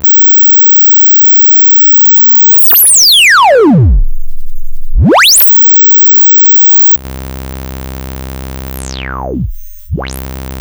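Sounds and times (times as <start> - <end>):
lowpass synth on a Polivoks Formanta: 2.5 - 7.0, 8.7 - 10.5.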